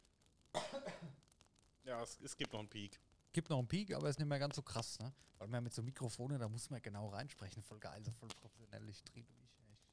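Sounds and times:
single rough cough away from the microphone: 0.6 - 1.2
speech: 1.8 - 9.6.

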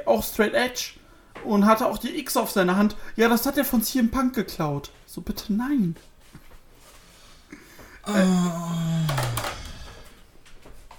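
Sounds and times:
speech: 0.0 - 6.1, 8.0 - 9.2
toilet paper roll hitting headphones: 9.1 - 10.9.

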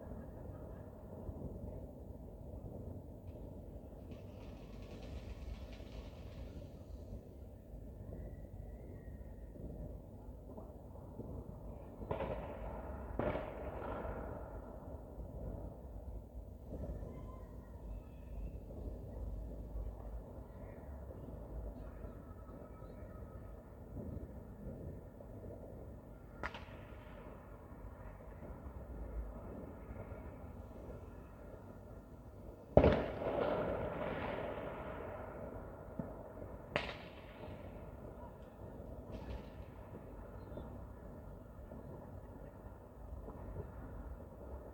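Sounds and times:
New Year's Eve fireworks: 0.0 - 44.7.

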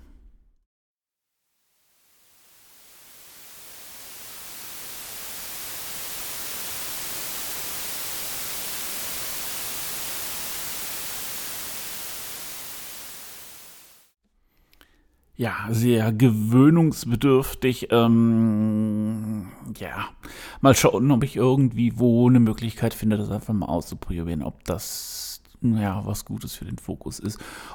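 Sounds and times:
steady broadband white noise hiss: 1.8 - 14.2
speech: 15.4 - 27.7.

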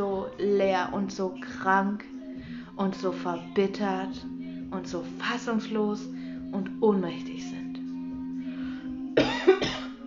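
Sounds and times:
steady low hum: 0.0 - 10.0
speech: 0.8 - 2.2, 2.8 - 7.6
person coughing: 9.2 - 10.0.

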